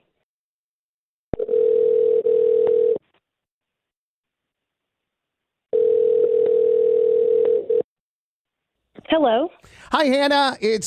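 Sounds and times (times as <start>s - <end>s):
outgoing phone call electronic ringback tones: 1.4s - 3.0s, 5.7s - 7.9s
speech: 9.2s - 10.8s.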